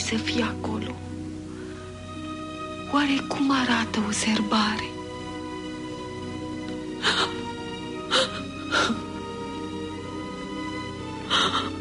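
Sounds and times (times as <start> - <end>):
steady hum: 0.0 - 11.8
speech: 0.1 - 1.1, 2.9 - 5.0
person crying and whimpering: 7.0 - 9.2, 11.2 - 11.8.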